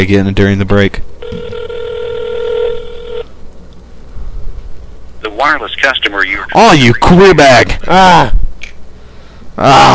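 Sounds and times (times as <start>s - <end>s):
speech: 0.0s - 1.1s, 5.4s - 8.5s, 9.6s - 9.9s
ringback tone of an outgoing telephone call: 1.2s - 3.3s.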